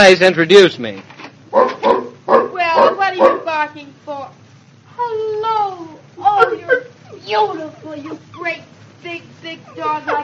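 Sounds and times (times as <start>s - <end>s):
speech: 0.0s - 1.8s, 2.8s - 4.4s, 5.0s - 10.2s
Great Dane barking: 1.5s - 3.6s.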